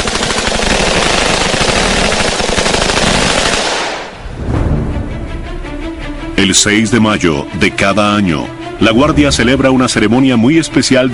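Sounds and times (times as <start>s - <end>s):
automatic gunfire from assault rifles and submachine guns: 0.0s - 4.1s
speech: 6.4s - 11.1s.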